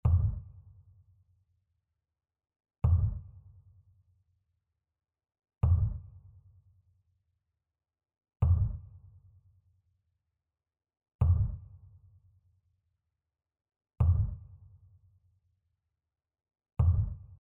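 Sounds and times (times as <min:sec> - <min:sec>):
kick drum: 0:00.0 - 0:00.6, 0:02.8 - 0:03.4, 0:05.6 - 0:06.3, 0:08.4 - 0:09.0, 0:11.2 - 0:11.9, 0:14.0 - 0:14.7, 0:16.8 - 0:17.4.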